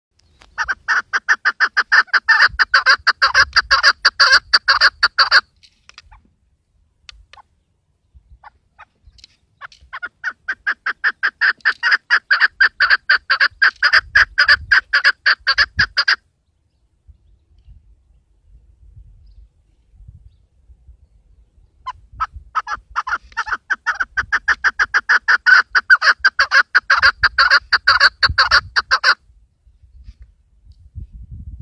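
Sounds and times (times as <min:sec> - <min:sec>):
keklik partridge calling: 0:00.2 - 0:06.3, 0:07.1 - 0:17.6, 0:21.6 - 0:29.2.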